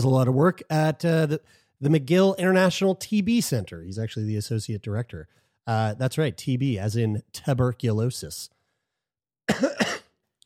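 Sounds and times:
speech: 0:00.0 - 0:08.6, 0:09.5 - 0:09.9
loud harsh cough: 0:09.5 - 0:10.2.

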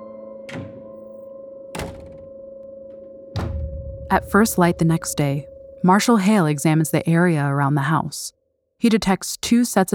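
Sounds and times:
house door shutting and locking: 0:00.5 - 0:01.0, 0:01.8 - 0:02.4
steady low droning hum: 0:03.4 - 0:07.0
speech: 0:04.1 - 0:09.9.

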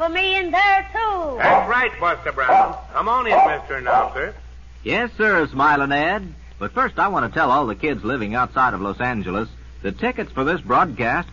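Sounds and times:
speech: 0:00.0 - 0:11.3
dog barking imitated by a human voice: 0:01.4 - 0:01.8, 0:02.4 - 0:04.3.

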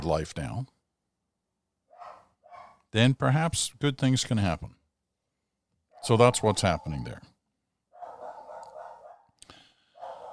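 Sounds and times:
speech: 0:00.0 - 0:00.8, 0:02.9 - 0:04.8, 0:06.0 - 0:07.3
Nova Scotia duck tolling retriever howling bark: 0:01.9 - 0:02.8, 0:05.9 - 0:07.2, 0:07.9 - 0:10.3.

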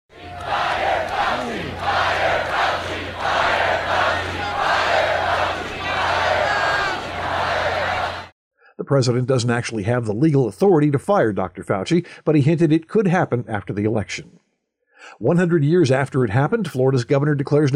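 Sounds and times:
large rally crowd chanting a short phrase in unison in South Florida: 0:00.1 - 0:08.3
speech: 0:08.9 - 0:14.4, 0:15.0 - 0:17.7.

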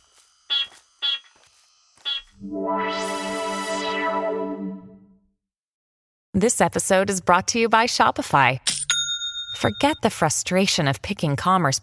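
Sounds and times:
long loud buzzing electronic tone: 0:00.5 - 0:05.0
speech: 0:02.4 - 0:03.0, 0:06.4 - 0:08.7, 0:09.6 - 0:11.8.

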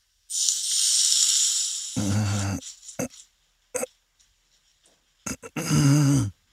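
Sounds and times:
hot oil sizzling over garlic with crackles and pops: 0:00.2 - 0:03.0
short voiced murmurs: 0:02.0 - 0:02.6, 0:05.3 - 0:06.3.

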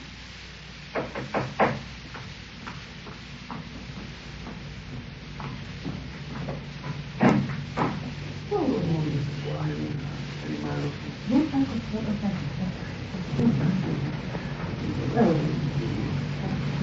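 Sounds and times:
low hum: 0:00.0 - 0:16.8
postman knocking on a front door: 0:00.9 - 0:01.9.

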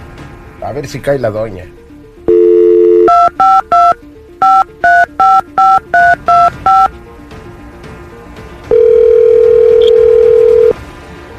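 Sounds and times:
speech: 0:00.6 - 0:01.8
telephone dial tone: 0:02.3 - 0:06.9, 0:08.7 - 0:10.8
touch-tone telephone keypad beeps: 0:02.3 - 0:06.9, 0:08.7 - 0:10.8.

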